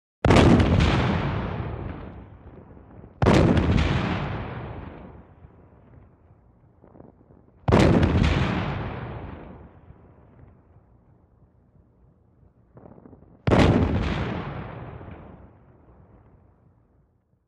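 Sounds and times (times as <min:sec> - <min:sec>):
modern artillery cannon shot heard from outside: 0:00.2 - 0:02.6, 0:03.2 - 0:05.3, 0:07.6 - 0:09.7, 0:13.4 - 0:15.6.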